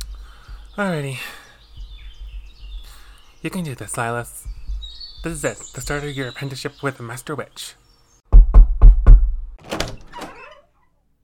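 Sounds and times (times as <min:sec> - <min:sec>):
speech: 0:00.8 - 0:01.4, 0:03.4 - 0:04.5, 0:05.2 - 0:07.8
heavy knocking on a wooden door: 0:01.8 - 0:02.9, 0:04.4 - 0:05.4, 0:08.3 - 0:09.4
door creaking open: 0:09.6 - 0:10.8.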